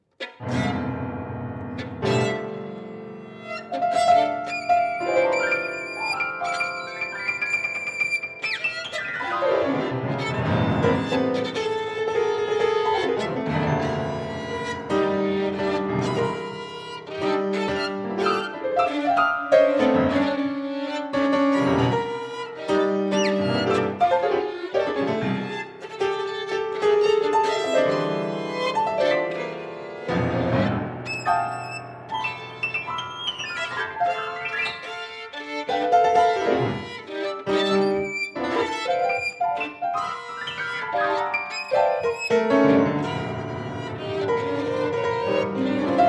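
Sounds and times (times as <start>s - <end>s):
violin and piano music: 0.0s - 46.0s.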